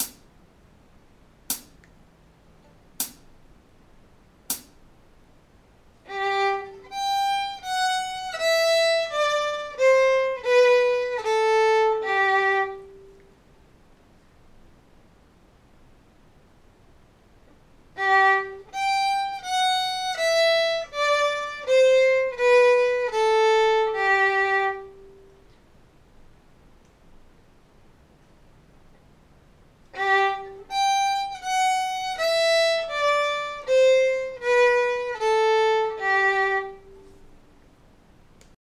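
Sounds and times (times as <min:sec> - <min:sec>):
fiddle playing G major scale descending: 0:06.1 - 0:13.1, 0:18.0 - 0:25.2, 0:30.0 - 0:37.3.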